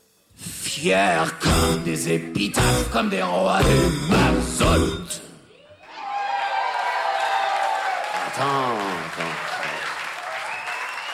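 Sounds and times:
speech: 0:00.8 - 0:05.2, 0:08.4 - 0:09.4
voices calling out and cheering: 0:05.5 - 0:11.1
crowd applauding: 0:06.0 - 0:11.1.

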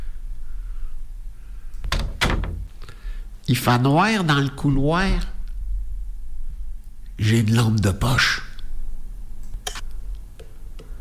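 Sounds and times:
door swinging shut and latching: 0:01.9 - 0:02.7
speech: 0:03.5 - 0:05.3, 0:07.2 - 0:08.4.

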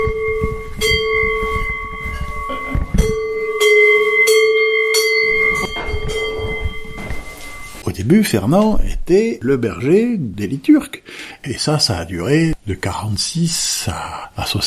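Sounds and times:
bells ringing: 0:00.0 - 0:07.8
speech: 0:08.1 - 0:14.6.

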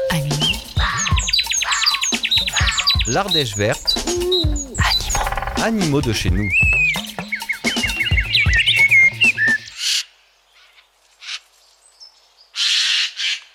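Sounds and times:
jumble of whistles, chirps and low tones: 0:00.0 - 0:05.5, 0:06.4 - 0:09.8
Eurasian jay screeching: 0:00.8 - 0:07.0
speech: 0:03.1 - 0:04.4, 0:05.6 - 0:06.7.

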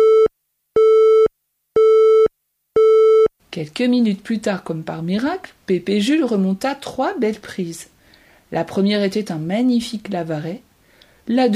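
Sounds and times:
telephone busy tone after a call cuts off on a poor connection: 0:00.0 - 0:03.3
speech: 0:03.6 - 0:07.9, 0:08.5 - 0:11.5.

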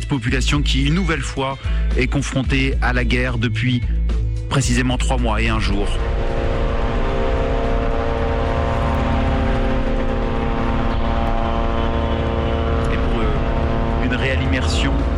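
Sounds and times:
speech: 0:00.1 - 0:06.2
Israeli drones buzzing overhead in Lebanon: 0:05.1 - 0:15.1.

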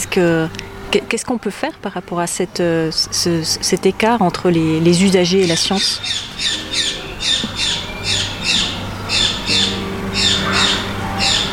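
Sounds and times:
steady low hum: 0:00.0 - 0:11.5
speech: 0:00.2 - 0:07.0
bird squawking: 0:05.3 - 0:11.5.

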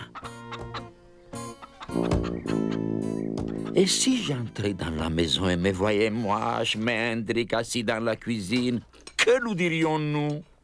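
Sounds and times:
hens clucking in a yard: 0:00.0 - 0:04.4
speech: 0:03.8 - 0:10.5.

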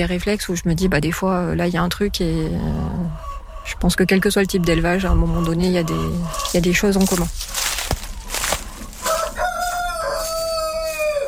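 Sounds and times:
speech: 0:00.0 - 0:07.6
chicken clucking: 0:02.6 - 0:11.2
Grise du Vercors rooster crowing: 0:08.4 - 0:11.2.

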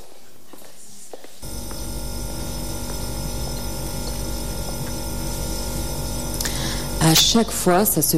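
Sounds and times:
self-cleaning fridge brushing itself with mechanical whirring: 0:01.4 - 0:07.2
speech: 0:07.1 - 0:08.1.

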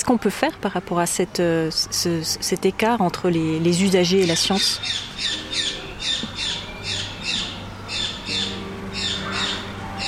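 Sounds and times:
speech: 0:00.0 - 0:05.7
bird squawking: 0:04.2 - 0:10.0.

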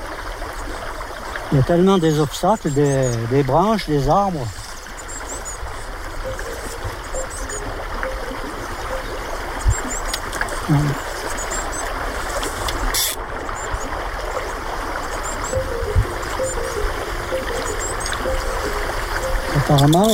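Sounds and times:
stream water flowing: 0:00.0 - 0:20.1
speech: 0:01.5 - 0:04.6, 0:10.7 - 0:11.1, 0:19.7 - 0:20.1
faint high chirps: 0:06.2 - 0:11.8, 0:15.4 - 0:20.1.

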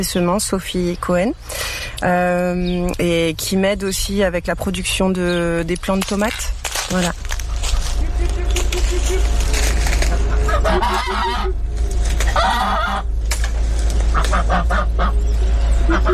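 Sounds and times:
speech: 0:00.0 - 0:07.3, 0:10.7 - 0:11.7, 0:14.2 - 0:16.1
constant low rumbling noise: 0:00.0 - 0:16.1
geese honking: 0:05.2 - 0:16.1
fowl clucking in a barnyard: 0:07.6 - 0:13.1, 0:14.0 - 0:16.1.

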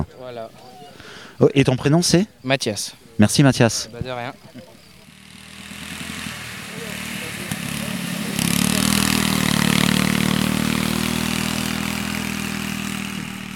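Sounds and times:
speech: 0:00.0 - 0:04.7
riding lawn mower engine running: 0:04.0 - 0:13.5.

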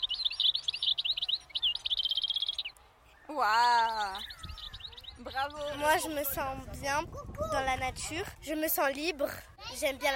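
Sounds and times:
small bird singing in a tree: 0:00.0 - 0:06.4
speech: 0:03.3 - 0:04.4, 0:05.2 - 0:10.1.

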